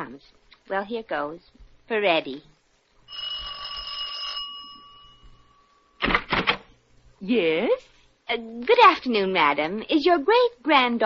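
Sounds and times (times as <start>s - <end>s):
speech: 0.0s - 2.5s, 3.1s - 3.3s, 7.2s - 11.0s
doorbell ringing with a metallic tone: 3.1s - 6.0s.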